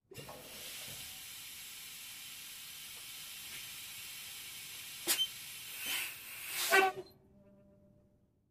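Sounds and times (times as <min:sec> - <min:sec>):
semi truck air brake: 0:05.0 - 0:07.1.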